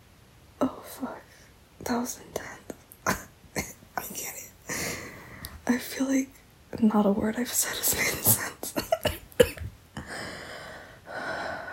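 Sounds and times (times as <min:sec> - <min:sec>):
speech: 0:00.6 - 0:02.5, 0:05.7 - 0:08.6
person coughing: 0:03.1 - 0:05.0, 0:08.0 - 0:09.7.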